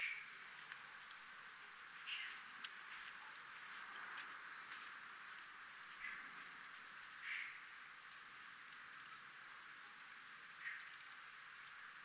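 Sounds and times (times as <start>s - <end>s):
several crickets chirping in a military zone: 0.0s - 12.0s.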